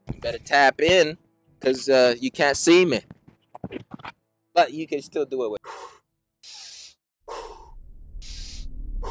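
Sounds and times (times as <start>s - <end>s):
speech: 0.2s - 3.2s, 4.6s - 5.6s
deep breathing in and out during a breathing exercise: 5.6s - 9.1s
low rumble: 7.6s - 9.1s.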